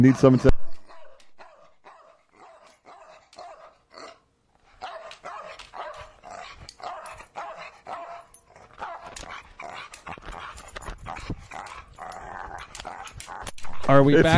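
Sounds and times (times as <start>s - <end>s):
speech: 0.0s - 0.7s, 14.0s - 14.3s
several dogs barking with yaps and woofs: 0.0s - 13.5s.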